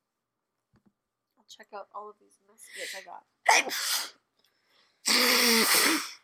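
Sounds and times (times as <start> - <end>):
speech: 1.5 - 4.2
person sneezing: 2.8 - 4.2, 5.0 - 6.2
person blowing nose: 3.5 - 4.2, 5.0 - 6.2.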